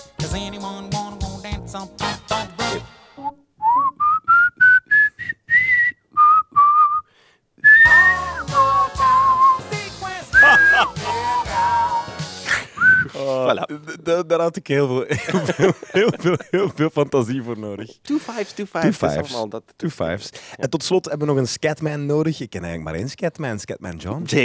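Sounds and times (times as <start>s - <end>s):
instrumental backing music: 0.0s - 3.4s, 7.8s - 12.6s
speech: 0.3s - 1.0s, 1.7s - 3.0s, 13.5s - 24.4s
person whistling a jazzy melody: 3.2s - 13.2s
laughter: 10.4s - 11.9s, 15.1s - 17.0s.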